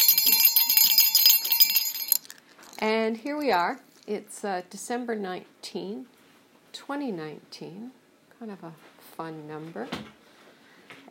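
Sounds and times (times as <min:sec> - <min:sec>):
small holiday bell ringing: 0:00.0 - 0:03.7
speech: 0:02.8 - 0:06.2, 0:06.8 - 0:10.2.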